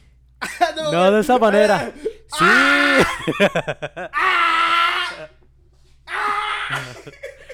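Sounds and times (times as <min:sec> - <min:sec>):
laughter: 0:00.4 - 0:05.5, 0:06.5 - 0:07.5
speech: 0:00.8 - 0:04.4, 0:06.7 - 0:07.4
person imitating a ghostly presence screaming in someone's ear: 0:02.3 - 0:03.2, 0:04.2 - 0:05.4, 0:06.1 - 0:07.1.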